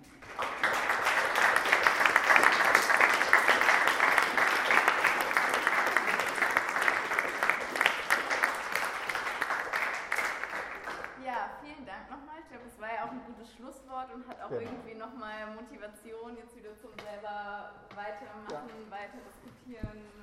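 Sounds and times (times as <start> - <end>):
room full of people applauding: 0.0 - 11.2.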